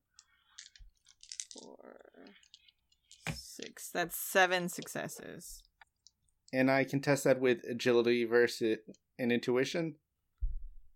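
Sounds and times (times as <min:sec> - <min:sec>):
dice rattling across a hard surface: 0:00.2 - 0:03.7, 0:04.6 - 0:05.2
speech: 0:01.6 - 0:05.7, 0:06.5 - 0:10.0.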